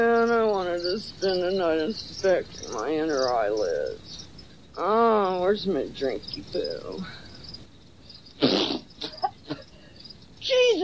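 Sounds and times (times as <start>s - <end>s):
high-pitched cricket chirping: 0.0s - 10.8s
speech: 0.9s - 4.2s, 4.8s - 7.2s, 8.4s - 8.8s, 10.5s - 10.8s
loud cough-like burst: 8.4s - 9.6s.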